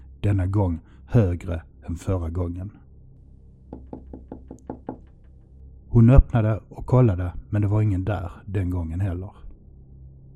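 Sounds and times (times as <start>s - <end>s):
speech: 0.2s - 2.8s, 6.0s - 9.4s
firm knocking on a door: 3.7s - 5.4s.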